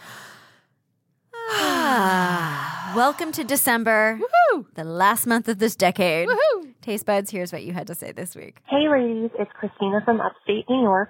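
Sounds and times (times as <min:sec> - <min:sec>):
person taking a deep breath: 0:00.0 - 0:00.8, 0:01.4 - 0:03.5
speech: 0:03.0 - 0:11.0.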